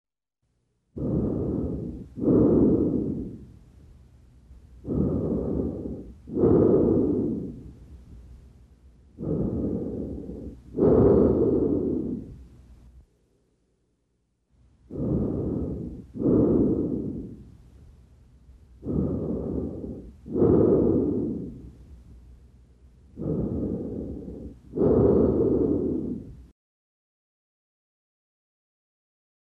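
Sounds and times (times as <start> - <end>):
normal tracheal breath sounds over the thoracic trachea: 1.0 - 4.0, 4.7 - 12.9, 14.8 - 18.0, 18.7 - 22.2, 23.0 - 26.5.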